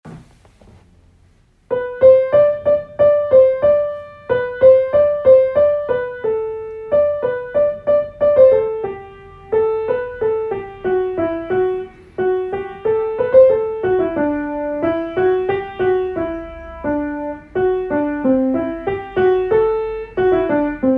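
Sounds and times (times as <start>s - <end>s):
piano piece: 1.7s - 20.9s.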